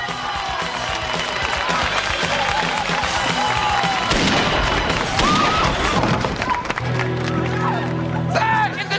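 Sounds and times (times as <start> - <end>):
dense roaring crowd cheering: 0.0 - 8.8
gunshots: 4.0 - 6.4.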